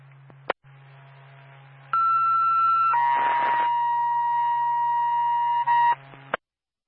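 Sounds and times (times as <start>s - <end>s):
low hum: 0.0s - 6.4s
ambulance dispatch paging tone over a radio: 2.0s - 6.0s.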